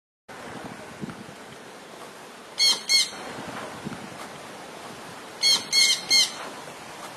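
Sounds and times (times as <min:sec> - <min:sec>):
Jandaya parakeet squawking: 0:02.6 - 0:03.2, 0:05.4 - 0:06.4.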